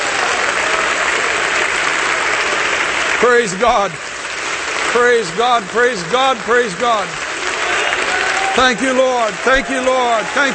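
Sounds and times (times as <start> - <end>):
audience clapping: 0.0 - 10.5
speech: 3.2 - 4.1, 4.9 - 7.2, 8.6 - 10.5.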